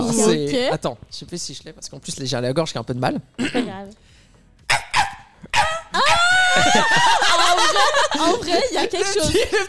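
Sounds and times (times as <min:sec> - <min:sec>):
speech: 0:00.1 - 0:04.1, 0:06.6 - 0:09.6
person imitating a small dog with high strained yaps: 0:04.7 - 0:06.6
laughter: 0:06.0 - 0:09.6.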